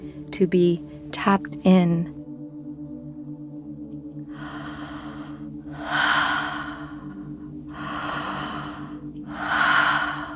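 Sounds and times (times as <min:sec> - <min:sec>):
speech: 0:00.4 - 0:02.2
breaths through an open mouth: 0:04.4 - 0:10.3.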